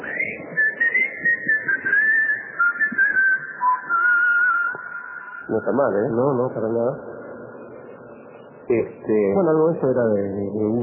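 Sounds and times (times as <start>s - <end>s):
person whistling a steady clear note as a call signal: 0.0s - 6.0s
speech: 5.5s - 7.1s, 8.7s - 10.8s.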